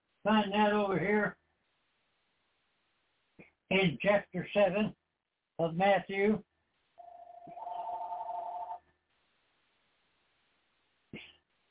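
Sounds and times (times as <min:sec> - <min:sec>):
speech: 0:00.2 - 0:01.4, 0:03.7 - 0:05.0, 0:05.6 - 0:06.5
electronic telephone ringing in another room: 0:07.0 - 0:08.8.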